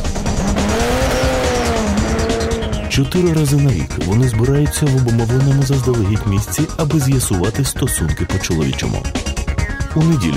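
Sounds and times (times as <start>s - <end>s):
Honda car engine and exhaust rumble at an amateur racing event: 0.0s - 4.2s
tires skidding at an amateur racing event: 0.2s - 3.5s
speech: 3.0s - 9.3s, 10.0s - 10.3s.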